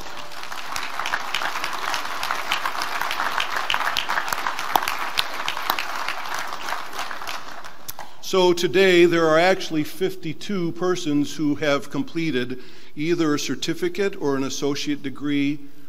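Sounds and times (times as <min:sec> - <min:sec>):
room full of people applauding: 0:00.0 - 0:07.9
speech: 0:08.3 - 0:15.7.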